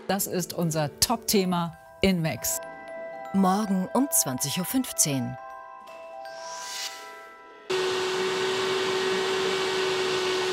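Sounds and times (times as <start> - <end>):
speech: 0.1 - 2.7, 3.3 - 5.4
water-filter vacuum cleaner running: 7.7 - 10.5.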